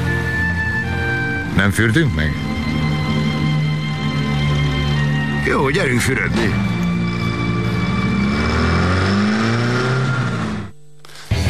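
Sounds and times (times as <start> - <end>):
car engine drone driving toward the sea: 0.0 - 11.4
speech: 1.6 - 2.6, 5.4 - 6.8.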